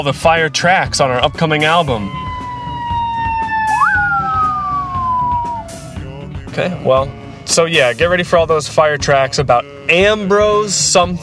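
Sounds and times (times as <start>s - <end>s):
speech: 0.0s - 2.2s, 6.6s - 11.2s
ambulance siren wailing as it passes: 0.0s - 6.1s.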